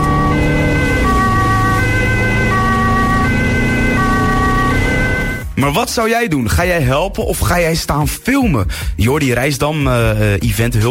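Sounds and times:
dense rumble of traffic and engine noise: 0.0s - 5.4s
two-tone ambulance siren heading to an accident in The Hague: 0.0s - 5.6s
speech: 5.7s - 10.8s.

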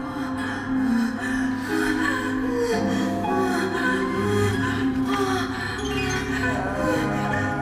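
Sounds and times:
layered voices of singers moaning and panting rhythmically: 0.0s - 7.6s
sustained vocal tones: 0.0s - 7.6s.

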